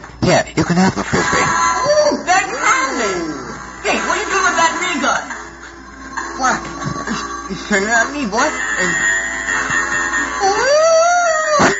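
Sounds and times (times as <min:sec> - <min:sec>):
speech: 0:00.2 - 0:02.4, 0:07.5 - 0:09.1
laughter: 0:00.6 - 0:07.7
person imitating a dog howling: 0:10.4 - 0:11.7.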